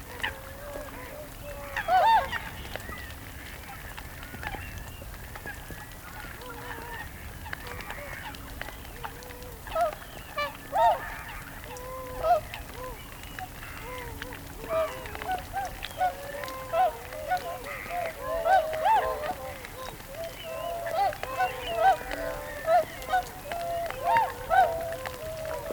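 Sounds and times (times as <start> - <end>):
whooper swan flock calling: 6.6 - 25.7.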